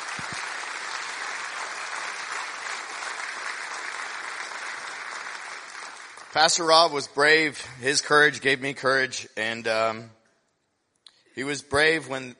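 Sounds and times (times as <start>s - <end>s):
crowd applauding for a pastor: 0.0s - 7.4s
speech: 0.2s - 0.4s, 6.3s - 10.2s, 11.4s - 12.3s.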